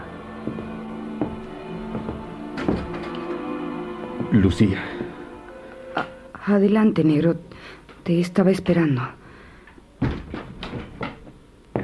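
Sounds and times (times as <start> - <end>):
speech: 4.3 - 5.0, 6.4 - 9.2
door swinging thunk: 10.0 - 11.2.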